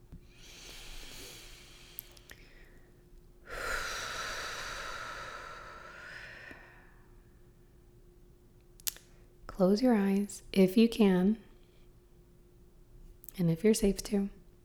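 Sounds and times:
deep breath in during a guided breathing exercise: 0:00.4 - 0:02.9, 0:03.5 - 0:07.0
speech: 0:09.6 - 0:11.4, 0:13.4 - 0:14.4.

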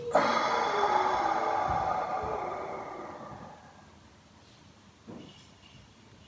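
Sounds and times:
person inhaling through nose and exhaling through mouth: 0:00.0 - 0:04.0.

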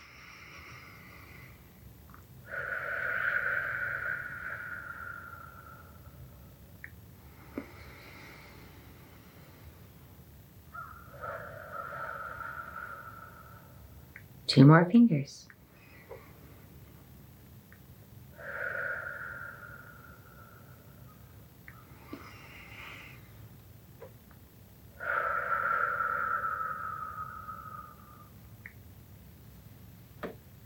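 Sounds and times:
slow deep breathing exercise: 0:00.0 - 0:14.4, 0:15.5 - 0:28.8
speech: 0:14.5 - 0:15.5.

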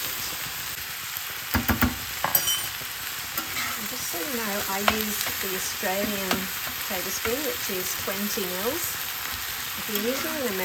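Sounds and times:
minced meat frying in a pan with softened browning onion: 0:00.0 - 0:10.6
clinks and scrapes of stirring: 0:02.2 - 0:02.8, 0:03.4 - 0:03.8
speech: 0:04.3 - 0:09.0, 0:09.9 - 0:10.6.

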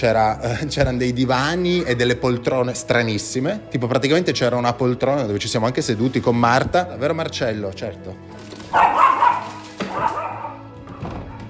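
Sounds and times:
speech: 0:00.0 - 0:09.0
dog barking: 0:08.7 - 0:11.4.

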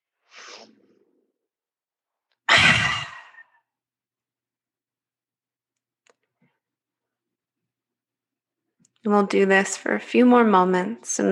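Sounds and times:
breath drawn softly in through the nose: 0:00.2 - 0:01.0
speech: 0:09.0 - 0:11.2.

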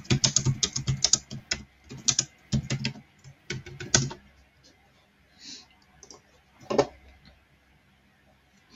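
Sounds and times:
rapid keyboard typing of a message: 0:00.0 - 0:04.2.

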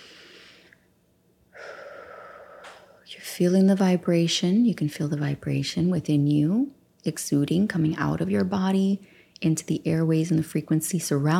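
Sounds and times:
deep breath in during a guided meditation: 0:00.0 - 0:00.8, 0:01.5 - 0:03.0
speech: 0:03.4 - 0:11.3.

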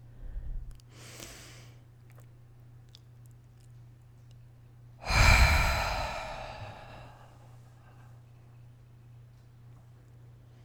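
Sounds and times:
deep exhale emptying the lungs during a breathing exercise: 0:05.0 - 0:08.0.

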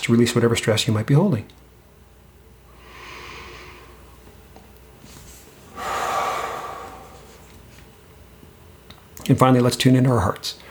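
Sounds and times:
speech: 0:00.0 - 0:01.7, 0:09.3 - 0:10.6
slow deep breathing during a relaxation exercise: 0:02.7 - 0:04.2, 0:05.7 - 0:07.4.

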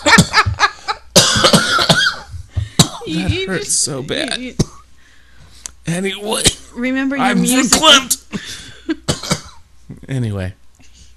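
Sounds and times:
person coughing: 0:01.1 - 0:03.3, 0:09.0 - 0:09.6
speech: 0:03.5 - 0:04.8, 0:05.8 - 0:09.2, 0:10.1 - 0:10.6.

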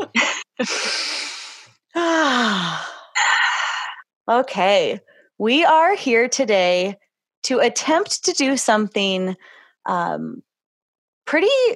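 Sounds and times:
speech: 0:00.0 - 0:01.0, 0:04.3 - 0:10.5, 0:11.3 - 0:11.7
deep breathing by a person: 0:00.6 - 0:04.0.

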